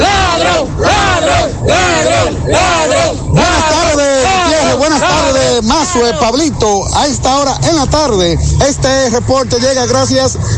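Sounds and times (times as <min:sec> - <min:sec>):
protest crowd shouting in rhythmic chanting: 0:00.0 - 0:05.5
speech: 0:06.0 - 0:10.5.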